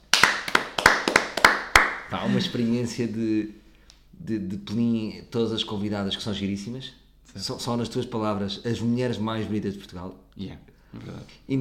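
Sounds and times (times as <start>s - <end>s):
sharp hand claps of one or two people applauding: 0.0s - 2.1s
speech: 2.1s - 3.6s, 4.2s - 11.5s.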